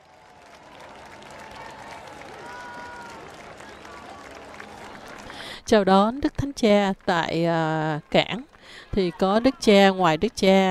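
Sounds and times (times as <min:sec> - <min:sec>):
large crowd at a port in the Canary Islands cheering and clapping: 0:00.0 - 0:10.6
scattered shouts from the crowd: 0:01.5 - 0:04.3
speech: 0:05.7 - 0:10.6.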